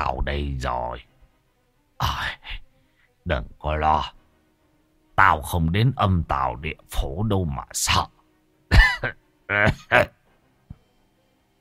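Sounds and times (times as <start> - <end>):
speech: 0.0 - 1.1, 2.0 - 2.4, 3.2 - 4.2, 5.2 - 8.2, 9.0 - 10.2
old man laughing and coughing: 8.7 - 10.2.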